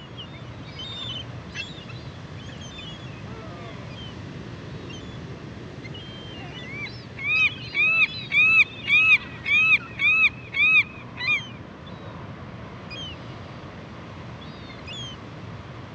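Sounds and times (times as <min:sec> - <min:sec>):
California gull yelping calls in Western North America: 0:06.2 - 0:11.5.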